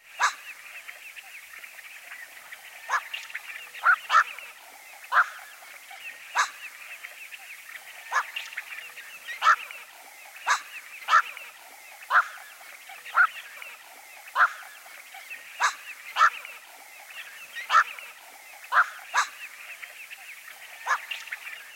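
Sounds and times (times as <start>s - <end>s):
steady hiss: 0.0s - 21.7s
black-crowned night heron barking quawk call: 0.2s - 0.5s, 3.7s - 6.8s, 8.0s - 8.4s, 9.2s - 13.6s, 14.3s - 19.5s, 20.7s - 21.3s.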